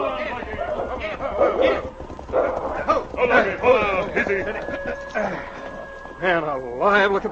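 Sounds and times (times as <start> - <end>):
dog barking and snarling during a fight with wolves: 0.8 - 3.0
speech: 3.2 - 5.6, 6.2 - 7.2.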